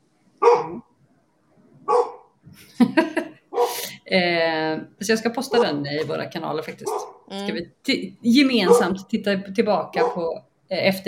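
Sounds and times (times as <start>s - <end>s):
dog barking: 0.4s - 0.8s, 1.8s - 2.3s, 3.5s - 3.8s, 5.5s - 5.8s, 6.8s - 7.3s, 8.6s - 9.0s, 10.0s - 10.2s
speech: 4.1s - 11.0s.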